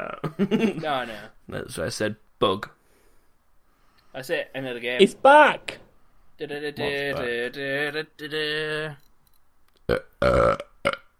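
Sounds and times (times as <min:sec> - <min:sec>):
speech: 0:00.0 - 0:02.8, 0:04.2 - 0:05.8, 0:06.4 - 0:09.0, 0:09.9 - 0:11.0
person burping a tune: 0:09.9 - 0:11.1.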